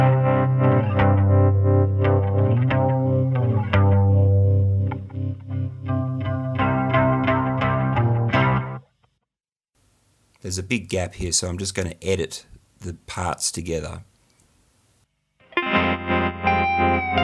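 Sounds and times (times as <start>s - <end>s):
distorted electric guitar with slapback delay, tremolo and chorus: 0.0s - 8.9s, 15.4s - 17.2s
speech: 10.5s - 14.1s.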